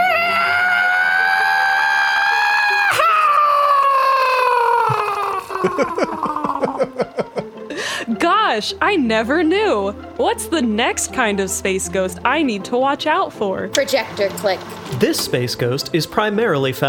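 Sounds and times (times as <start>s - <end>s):
person imitating the scream of a space banshee: 0.0s - 6.9s
laughter: 4.6s - 7.9s
speech: 5.6s - 6.5s, 8.2s - 16.8s.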